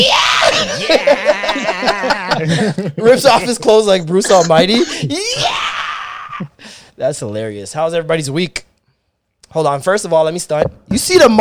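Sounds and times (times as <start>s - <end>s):
man screaming: 0.0s - 2.5s, 4.2s - 6.6s
laughter: 0.3s - 5.6s
speech: 0.9s - 5.5s, 6.4s - 8.7s, 9.5s - 11.4s.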